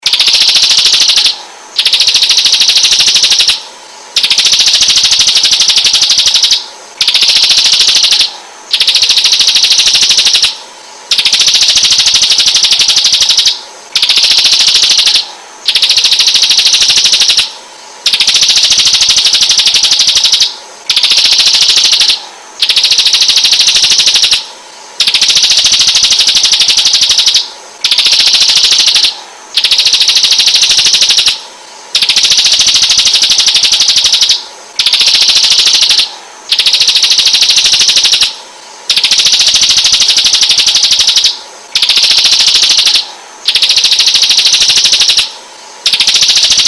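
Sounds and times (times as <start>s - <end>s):
Ciblek bird chirping vigorously: 0.0s - 3.6s, 4.2s - 31.4s, 32.0s - 39.4s, 40.5s - 46.5s.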